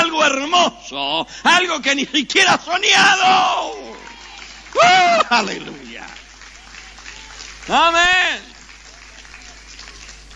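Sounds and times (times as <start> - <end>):
speech: 0.3 - 4.0, 4.8 - 6.2, 7.7 - 8.5
audience applause: 3.0 - 10.3.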